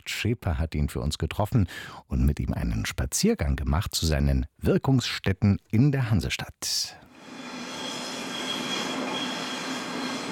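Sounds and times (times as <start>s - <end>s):
speech: 0.1s - 7.4s
faint metallic squeal: 7.6s - 10.3s
trains rumbling over rails in a glass U-Bahn and S-Bahn station: 7.7s - 10.3s.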